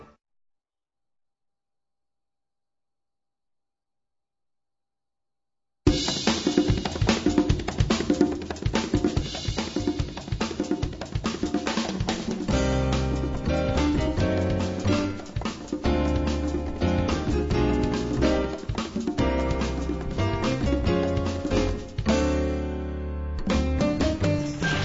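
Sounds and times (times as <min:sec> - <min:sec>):
instrumental music: 0:05.9 - 0:24.8.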